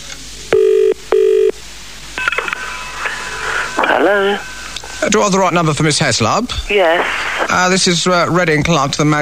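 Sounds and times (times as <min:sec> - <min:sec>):
telephone ringing in a double burst: 0:00.6 - 0:01.6, 0:02.2 - 0:04.8
speech: 0:04.0 - 0:09.2.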